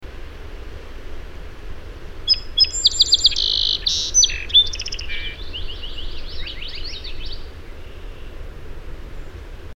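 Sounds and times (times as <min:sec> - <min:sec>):
song sparrow singing: 0:02.2 - 0:08.4.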